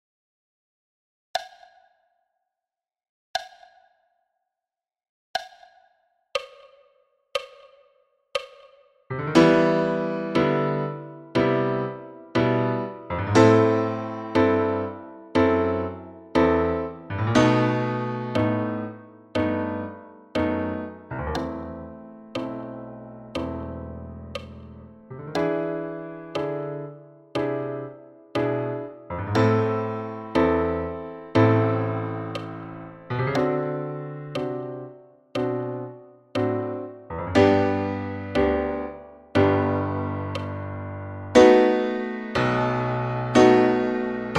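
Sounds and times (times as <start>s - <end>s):
piano solo at 60 bpm: 9.1s - 44.3s.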